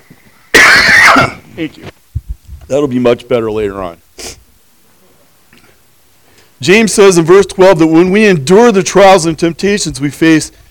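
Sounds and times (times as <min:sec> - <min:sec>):
person reading Bible verses coughing: 0:00.5 - 0:01.4
speech: 0:01.2 - 0:02.0, 0:02.7 - 0:04.0, 0:06.6 - 0:10.6.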